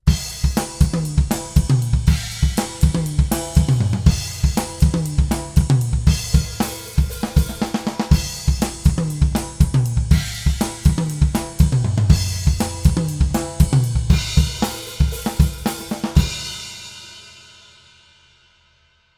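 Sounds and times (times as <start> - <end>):
drum kit: 0.0 - 18.1.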